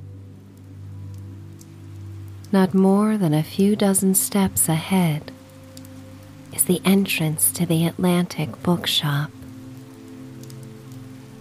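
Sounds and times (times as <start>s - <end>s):
steady rain: 0.0s - 11.3s
speech: 2.5s - 5.3s, 6.6s - 9.4s.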